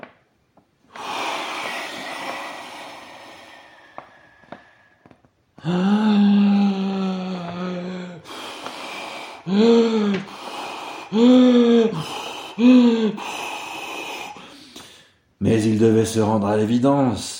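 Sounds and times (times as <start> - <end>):
voice imitating a wolf huffing and blowing: 0.9 - 4.6, 5.6 - 14.6
speech: 5.6 - 6.0, 11.2 - 11.4, 16.1 - 17.3.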